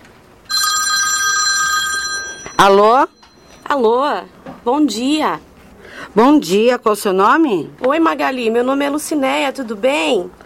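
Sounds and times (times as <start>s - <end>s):
telephone ringing for an incoming call: 0.5s - 3.8s
speech: 2.6s - 5.5s, 6.1s - 10.4s.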